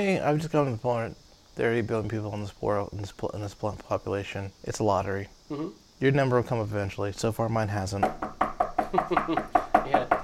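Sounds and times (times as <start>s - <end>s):
speech: 0.0s - 10.2s
knuckles knocking on wood: 8.0s - 10.2s.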